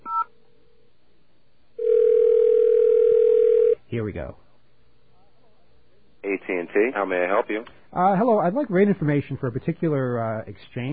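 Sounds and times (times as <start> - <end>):
telephone operator connecting tone after dialing 0: 1.8 - 3.8
speech: 4.0 - 4.4, 6.3 - 10.9.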